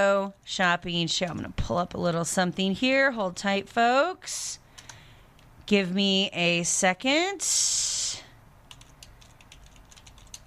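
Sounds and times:
speech: 0.0 - 4.6, 5.7 - 8.2
fingers typing on a computer keyboard: 4.8 - 5.0, 8.7 - 10.4.

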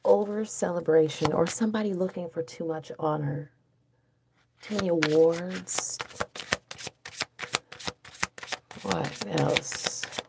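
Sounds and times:
speech: 0.2 - 3.6, 4.6 - 6.2, 8.8 - 9.9
deck of tarot cards being shuffled: 4.6 - 10.2.

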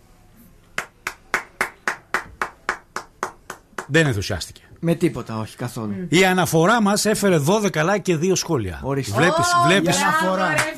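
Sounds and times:
sharp hand claps at a brisk pace: 0.6 - 4.1, 10.5 - 10.7
speech: 3.9 - 10.7.

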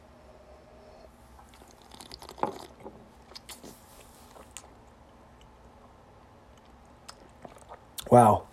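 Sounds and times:
wet slurps of cask-strength spirit: 1.4 - 4.8, 6.6 - 8.0
soft lip and tongue sounds: 1.4 - 8.1.

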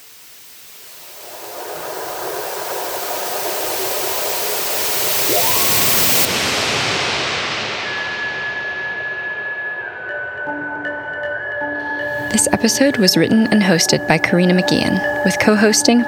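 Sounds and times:
waterfall roaring: 0.0 - 7.4
thin high tones: 1.1 - 16.0
speech: 12.4 - 16.0.

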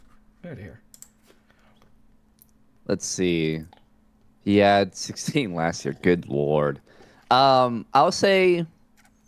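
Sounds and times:
faint steady hum: 0.0 - 9.2
speech: 0.5 - 0.9, 2.9 - 3.8, 4.4 - 8.8
typing on a computer keyboard: 0.9 - 1.2.

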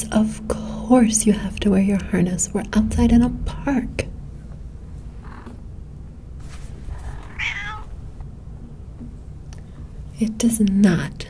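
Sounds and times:
speech: 0.0 - 4.1, 10.2 - 11.2
steady low outdoor rumble: 0.0 - 11.2
cat meowing in protest: 7.0 - 8.0.

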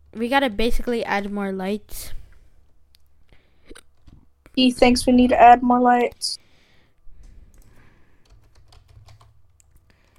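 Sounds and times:
speech: 0.1 - 2.2, 4.6 - 6.4
computer keyboard typing during a game session: 7.5 - 10.1.

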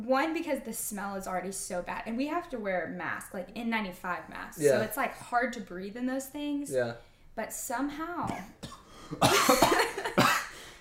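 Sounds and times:
speech: 0.1 - 10.4
person coughing after choking on saliva: 8.2 - 10.7.

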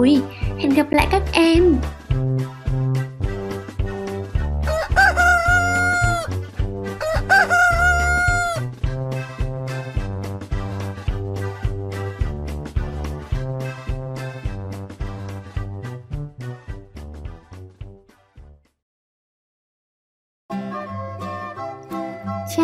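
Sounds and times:
speech: 0.0 - 2.5
bouncy rhythmic music track: 0.0 - 18.6, 20.5 - 22.6
rooster crowing: 4.7 - 6.4, 7.0 - 8.7.

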